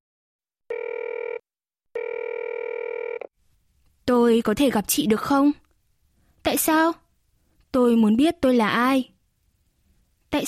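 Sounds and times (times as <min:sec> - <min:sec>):
ringback tones through a phone line: 0:00.7 - 0:01.4, 0:02.0 - 0:03.3
speech: 0:04.1 - 0:05.6, 0:06.5 - 0:07.0, 0:07.7 - 0:09.1.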